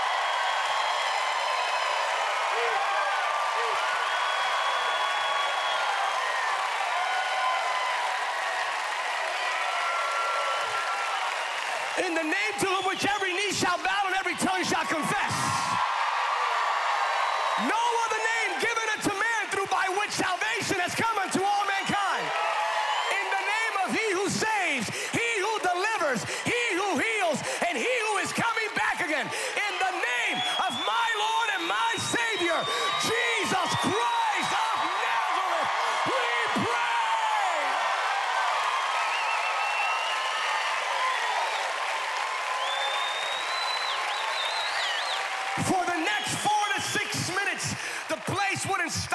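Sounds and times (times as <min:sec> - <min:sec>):
large crowd shouting and cheering after a prayer: 0:00.0 - 0:49.1
speech: 0:12.3 - 0:15.1.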